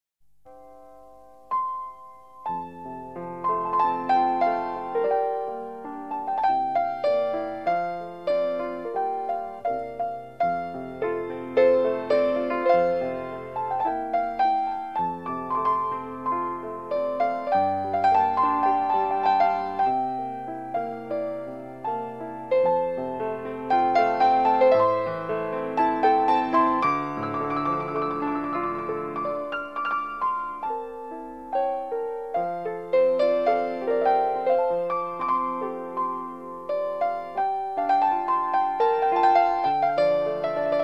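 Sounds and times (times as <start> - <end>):
piano with orchestra: 0.4 - 40.8.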